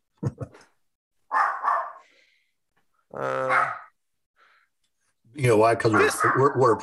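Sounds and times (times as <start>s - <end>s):
dog barking: 1.3s - 2.0s, 3.4s - 3.9s, 5.8s - 6.7s
speech: 3.2s - 3.6s, 5.4s - 6.8s.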